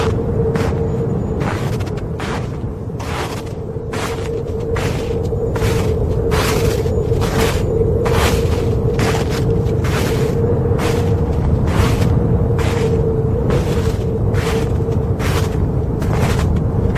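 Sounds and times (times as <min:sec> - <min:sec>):
footsteps crunching through snow: 0:00.0 - 0:16.9
strong cold polar wind roaring with faint whistling: 0:00.0 - 0:16.9.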